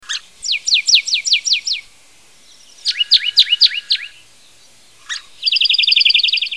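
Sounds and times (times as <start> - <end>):
birds: 0.0 - 6.5.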